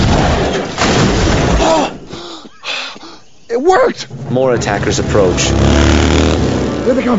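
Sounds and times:
rapid string of loud explosions: 0:00.0 - 0:01.7
speech: 0:03.6 - 0:07.1.

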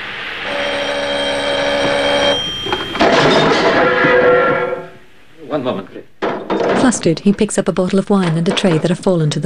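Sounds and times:
noisy burst of sound: 0:00.0 - 0:05.3
telephone bell ringing: 0:00.4 - 0:03.4
speech: 0:05.6 - 0:06.1, 0:06.9 - 0:09.4.

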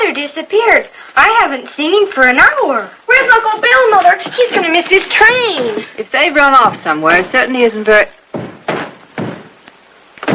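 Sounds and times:
speech: 0:00.2 - 0:08.2
dull heavy wooden thumps of an upstairs storeroom door being opened: 0:03.9 - 0:06.0, 0:08.3 - 0:09.6, 0:10.2 - 0:10.3.

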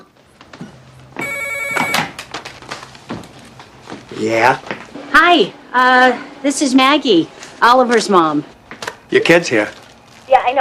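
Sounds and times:
telephone ringing with bell-like trill: 0:01.2 - 0:02.1
speech: 0:04.2 - 0:08.5, 0:09.1 - 0:09.8.

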